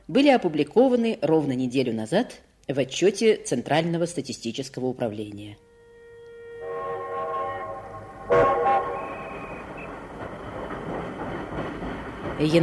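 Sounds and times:
speech: 0.1 - 5.6, 12.4 - 12.6
diesel locomotive horn blast: 5.6 - 9.9
diesel train rumbling as it pulls away from a station: 6.6 - 12.6.

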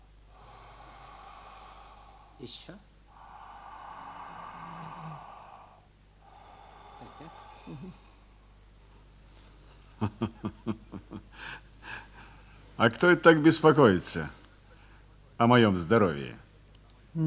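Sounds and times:
slow breathing by a prisoner during a medical examination: 0.0 - 10.0
faint low hum: 0.0 - 17.2
speech: 2.4 - 2.9, 7.2 - 8.1, 10.0 - 11.6, 12.8 - 14.4, 15.4 - 16.4.

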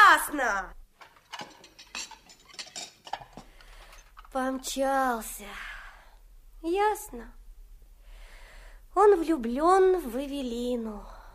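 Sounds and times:
low hum: 0.0 - 11.3
speech: 0.2 - 0.8, 4.3 - 5.7, 6.6 - 7.4, 9.0 - 11.2
dishes and cutlery clinking while washing up: 1.0 - 4.4.

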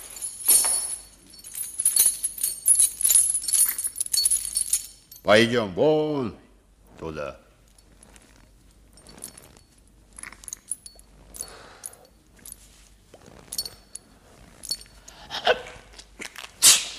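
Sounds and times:
metallic clinks and jangling: 0.0 - 5.3, 7.6 - 15.3
rustling handling noises: 0.0 - 5.3, 6.8 - 15.2
speech: 5.2 - 6.4, 7.0 - 7.4
person sneezing: 16.6 - 16.9.

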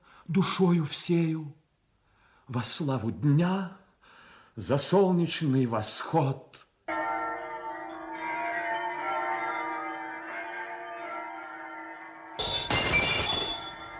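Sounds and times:
speech: 0.3 - 1.6, 2.5 - 3.8, 4.6 - 6.7
church bells ringing: 6.9 - 13.9.

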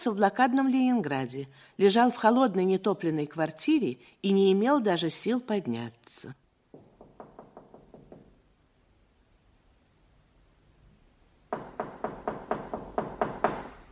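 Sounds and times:
speech: 0.0 - 6.4
knocking on a door: 6.7 - 8.4, 11.5 - 13.8.

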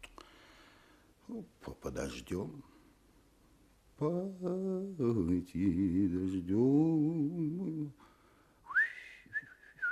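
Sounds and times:
speech: 1.3 - 2.8, 4.0 - 8.1
man whistling a tune: 8.6 - 9.8.

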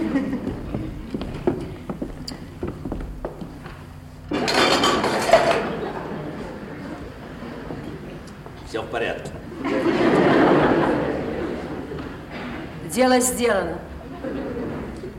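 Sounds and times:
laughter: 0.0 - 1.3, 5.3 - 8.1, 9.4 - 12.8, 13.8 - 15.1
dishes clinking as they are carried to the kitchen: 4.3 - 5.8
speech: 13.0 - 13.9.

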